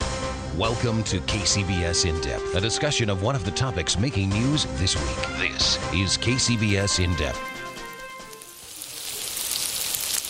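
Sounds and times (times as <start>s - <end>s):
speech: 0.6s - 7.5s
Beyond Meat plant-based patty sizzling in a hot pan: 6.4s - 10.2s.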